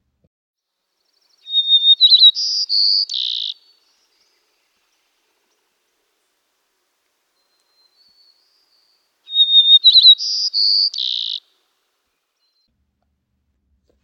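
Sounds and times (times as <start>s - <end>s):
White-crowned Sparrow singing: 1.0s - 6.4s, 7.3s - 11.6s.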